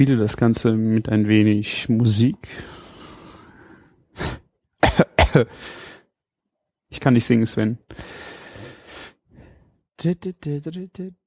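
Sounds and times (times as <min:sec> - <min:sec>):
speech: 0:00.0 - 0:02.8, 0:05.3 - 0:05.8, 0:06.9 - 0:08.3, 0:10.0 - 0:11.2
person coughing harshly: 0:04.8 - 0:05.6.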